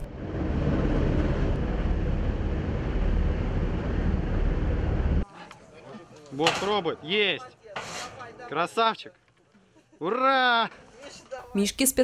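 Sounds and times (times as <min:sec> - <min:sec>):
helicopter carrying a suspended cage of sedated bears from a flood: 0:00.0 - 0:05.2
speech: 0:06.4 - 0:07.9, 0:08.5 - 0:09.2, 0:10.0 - 0:12.0.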